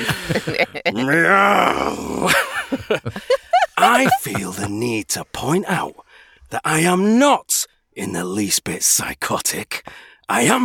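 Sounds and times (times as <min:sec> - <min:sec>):
laughter: 0:00.0 - 0:05.9
speech: 0:00.0 - 0:10.6
person imitating a deep rasping demonic growl: 0:01.0 - 0:02.5.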